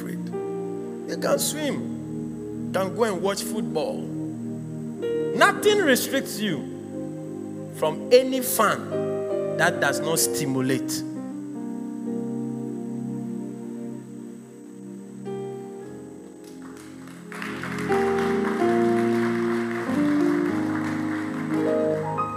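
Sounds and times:
keyboard music: 0:00.0 - 0:22.3
speech: 0:01.1 - 0:02.0, 0:02.7 - 0:04.2, 0:05.4 - 0:06.7, 0:07.8 - 0:11.1
audience clapping lightly: 0:16.4 - 0:22.3.

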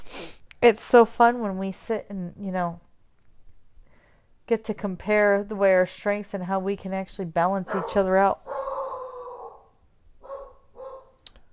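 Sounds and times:
speech: 0:00.6 - 0:02.9, 0:04.5 - 0:08.5
dogs barking: 0:07.7 - 0:11.2.

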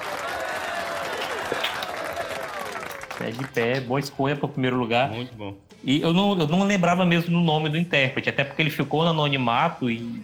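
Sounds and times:
crowd applause: 0:00.0 - 0:03.8
speech: 0:03.2 - 0:10.2.

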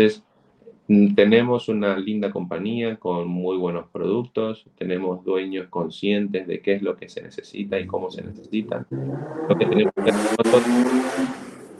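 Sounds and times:
speech: 0:00.0 - 0:00.2, 0:00.9 - 0:11.4
loud car roaring past: 0:08.5 - 0:11.7.

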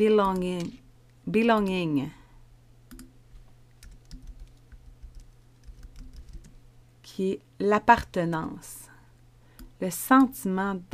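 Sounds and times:
speech: 0:00.0 - 0:02.2, 0:07.2 - 0:08.8, 0:09.8 - 0:10.9
steady low hum: 0:00.0 - 0:10.9
typing a word on a computer keyboard: 0:00.2 - 0:00.8, 0:02.9 - 0:03.1, 0:03.8 - 0:06.6.

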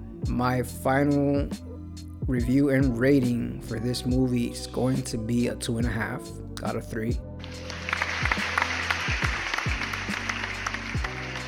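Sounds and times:
speech: 0:00.4 - 0:01.7, 0:02.3 - 0:07.7
crowd applauding: 0:07.6 - 0:11.4.

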